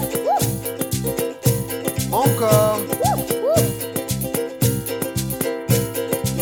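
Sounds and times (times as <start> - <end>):
dog barking and yipping: 0.0 - 0.6, 2.9 - 3.7
bouncy musical backing: 0.0 - 6.4.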